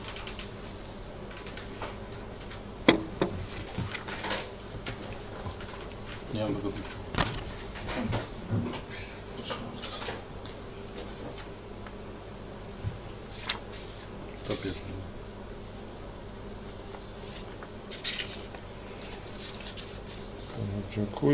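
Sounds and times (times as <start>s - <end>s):
room noise: 0.0s - 21.3s
pens scratching across paper ballot cards during a secret vote: 16.6s - 20.6s.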